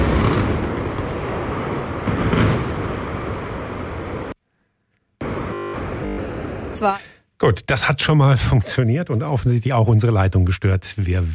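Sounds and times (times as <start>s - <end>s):
demolition blast of a power plant boiler house and denitrification units: 0.0s - 4.3s
speech: 6.8s - 11.3s.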